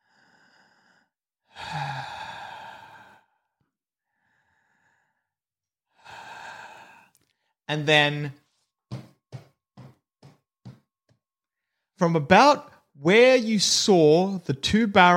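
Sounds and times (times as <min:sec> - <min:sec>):
long heavy breaths: 0:00.0 - 0:03.5, 0:06.0 - 0:07.6
speech: 0:07.7 - 0:08.4, 0:12.0 - 0:15.1.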